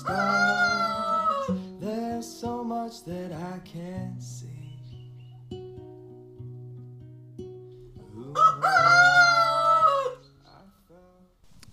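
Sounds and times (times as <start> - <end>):
speech: 0.0 - 0.4
rooster crowing: 0.0 - 1.7, 8.1 - 10.4.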